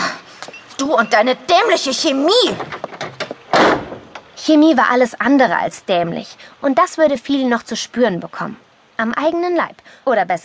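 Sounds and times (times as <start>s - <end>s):
speech: 0.8s - 2.8s, 4.5s - 10.4s
door pushed shut with rattles and thud: 2.5s - 4.4s.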